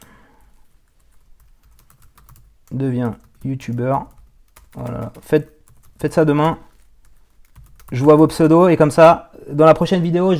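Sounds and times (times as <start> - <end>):
typing on a computer keyboard while writing a social media message: 0.4 - 8.6
speech: 2.7 - 4.2, 4.8 - 6.7, 7.9 - 10.3.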